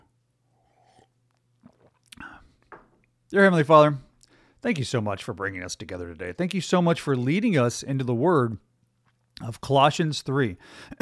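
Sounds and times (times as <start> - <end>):
faint steady hum: 0.0 - 11.0
sipping a hot drink: 0.5 - 2.5
swallow: 0.6 - 2.4
speech: 3.3 - 4.0, 4.6 - 8.7, 9.4 - 11.0.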